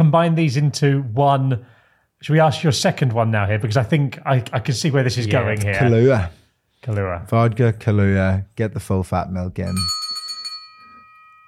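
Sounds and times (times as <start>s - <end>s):
speech: 0.0s - 10.0s
small bell struck: 9.7s - 11.4s.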